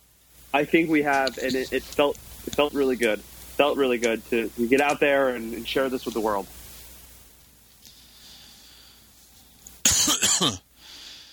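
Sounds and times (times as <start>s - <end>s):
quiet room noise: 0.0s - 11.3s
speech: 0.5s - 6.6s
single loud harsh breathy cough: 9.8s - 10.6s.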